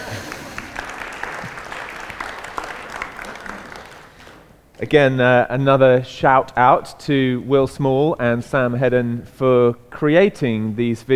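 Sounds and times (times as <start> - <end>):
audience crowd applauding: 0.0 - 4.8
speech: 4.8 - 11.1.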